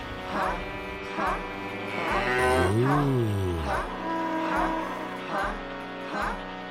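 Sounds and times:
cow mooing: 0.3s - 5.1s.

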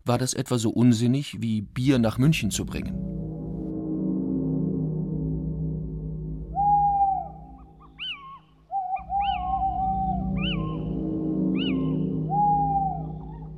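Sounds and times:
speech: 0.0s - 3.1s
low rumble: 1.4s - 13.5s
little owl calling: 6.6s - 13.5s.

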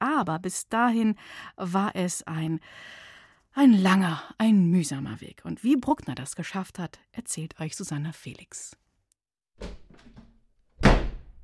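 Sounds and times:
speech: 0.2s - 8.8s
hat slammed angrily down onto a table: 10.8s - 11.4s.

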